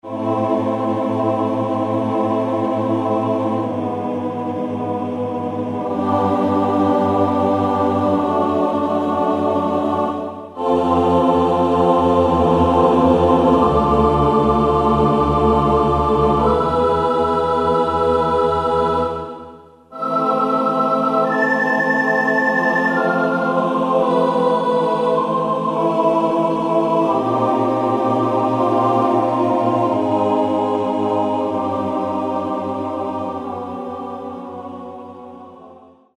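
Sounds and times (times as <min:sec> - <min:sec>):
synthesized choir factory patch on a Roland U-110: 0:00.0 - 0:36.1.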